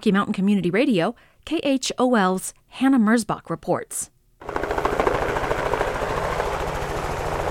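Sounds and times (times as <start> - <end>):
speech: 0.0 - 4.6
helicopter flying overhead with chopping rotor blades and droning engine: 4.4 - 7.5.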